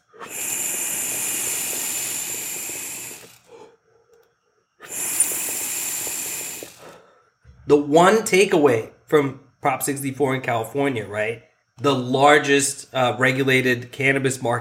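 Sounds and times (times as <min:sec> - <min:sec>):
dab of hash rosin sizzling and crackling on a hot nail: 0:00.1 - 0:03.4, 0:04.8 - 0:06.9
speech: 0:07.7 - 0:14.6.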